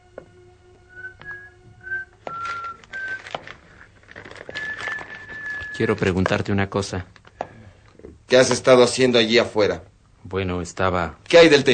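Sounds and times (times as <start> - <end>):
person whistling short clear tones: 0.8 - 3.4, 4.4 - 6.1
rustling: 2.2 - 7.4
small clattering noises: 2.3 - 8.7
speech: 5.8 - 7.2, 8.3 - 11.7.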